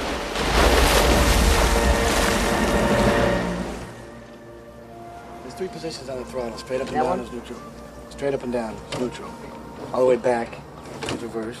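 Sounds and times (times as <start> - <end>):
whale crashing down onto the water on its side: 0.0 - 3.9
wind buffeting: 0.0 - 4.2
speech: 5.6 - 11.5.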